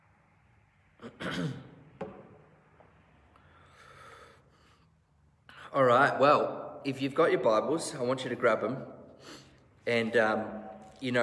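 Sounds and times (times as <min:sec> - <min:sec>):
speech: 0:01.0 - 0:01.7, 0:05.8 - 0:11.2
cough-like burst: 0:01.0 - 0:01.8
throat clearing with something stuck in the throat: 0:01.0 - 0:01.8
soft breathy exhalation: 0:03.4 - 0:05.6.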